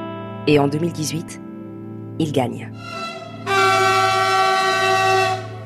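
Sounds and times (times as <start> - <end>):
speech: 0.4 - 1.4, 2.2 - 3.0
Swiss train whistle arriving at a French station: 2.8 - 5.6.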